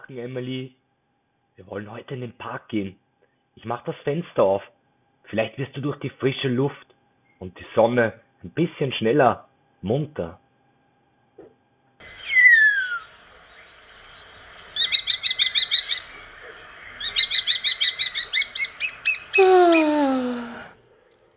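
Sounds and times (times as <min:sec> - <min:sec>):
speech: 0:00.1 - 0:00.8, 0:01.6 - 0:03.0, 0:03.6 - 0:10.4
starling singing in a garden before sunrise: 0:14.7 - 0:20.7.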